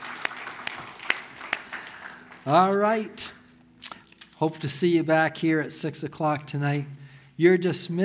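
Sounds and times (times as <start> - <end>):
church congregation clapping at the close of a service: 0.0 - 3.2
speech: 2.4 - 3.4, 4.4 - 8.0.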